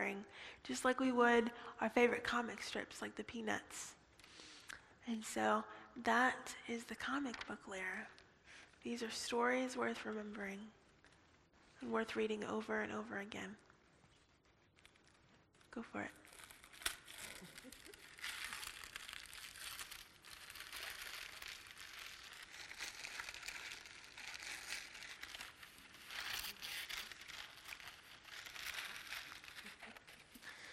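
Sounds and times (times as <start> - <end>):
speech: 0.1 - 4.0, 5.0 - 8.2, 8.8 - 10.8, 11.8 - 13.7, 15.7 - 16.2
gold paper crumpled and crinkling: 14.0 - 30.7.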